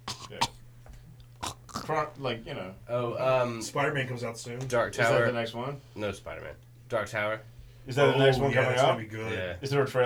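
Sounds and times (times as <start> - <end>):
short harsh coughs with a throat-clearing quality: 0.0 - 0.7, 1.3 - 2.1
speech: 1.9 - 10.0.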